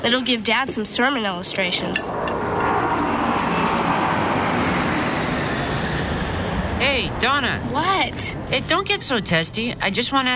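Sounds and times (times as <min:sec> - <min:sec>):
speech: 0:00.0 - 0:02.5, 0:06.8 - 0:10.3
airplanes flying loudly overhead: 0:01.4 - 0:08.8.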